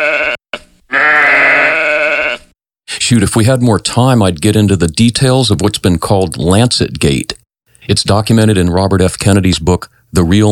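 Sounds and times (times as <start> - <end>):
sheep bleating: 0.0 - 2.5
speech: 3.1 - 10.5.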